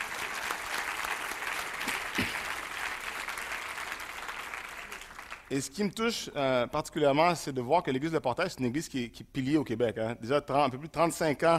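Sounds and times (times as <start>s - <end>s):
large audience applauding in a church: 0.0s - 5.5s
speech: 5.5s - 11.5s.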